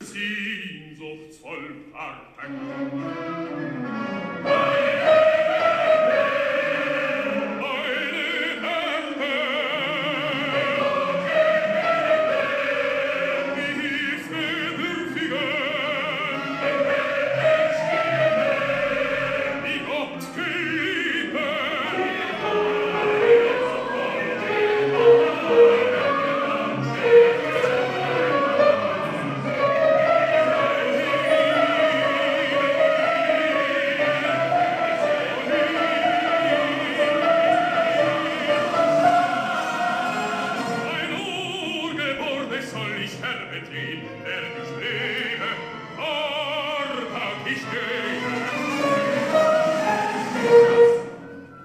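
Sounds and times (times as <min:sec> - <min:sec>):
sopranos singing: 0:00.0 - 0:51.6.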